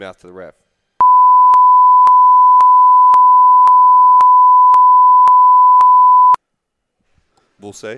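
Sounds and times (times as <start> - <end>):
speech: 0.0 - 0.7, 7.6 - 7.9
loud steady high-pitched censor bleep: 1.0 - 6.4.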